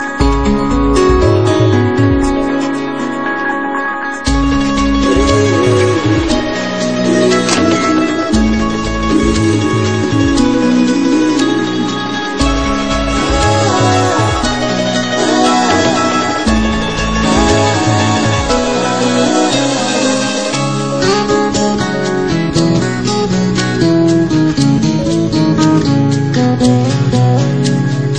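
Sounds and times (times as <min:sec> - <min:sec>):
guitar beats: 0:00.0 - 0:28.1.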